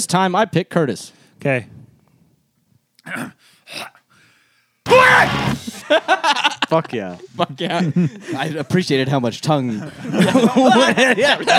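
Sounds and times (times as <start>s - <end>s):
speech: 0.0s - 1.8s, 3.1s - 4.0s, 5.0s - 11.5s
man's sharp breathy bursts: 3.4s - 4.9s
man screaming: 4.9s - 5.8s
laughter: 5.6s - 8.9s, 9.6s - 11.5s.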